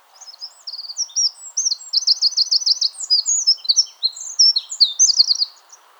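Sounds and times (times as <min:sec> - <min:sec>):
Eurasian wren song: 0:00.2 - 0:05.8.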